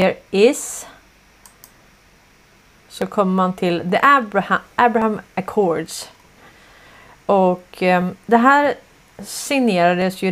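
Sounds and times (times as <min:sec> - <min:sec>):
speech: 0:00.0 - 0:00.9, 0:02.9 - 0:06.2, 0:07.3 - 0:10.3
steady low hiss: 0:00.0 - 0:10.3
crisp computer mouse clicks: 0:01.4 - 0:01.8.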